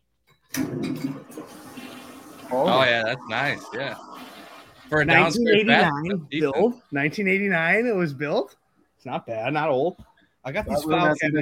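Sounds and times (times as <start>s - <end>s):
toilet flushing: 0.5s - 6.7s
speech: 2.5s - 4.1s, 4.9s - 11.4s.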